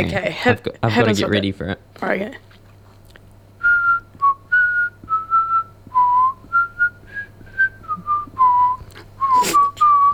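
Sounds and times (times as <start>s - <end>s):
speech: 0.0s - 2.5s
faint steady hum: 0.0s - 10.1s
person whistling the chorus of a New Zealand song: 3.6s - 10.1s.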